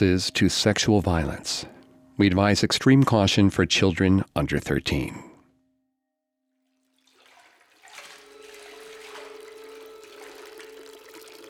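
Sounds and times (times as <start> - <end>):
speech: 0.0 - 5.3
water flowing into a basement: 6.9 - 11.4.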